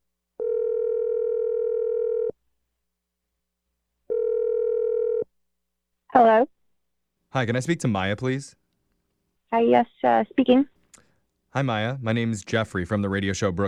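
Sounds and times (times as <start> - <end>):
telephone dial tone: 0.4 - 2.3, 4.1 - 5.3
speech: 7.4 - 8.6, 9.5 - 10.8, 11.6 - 13.6.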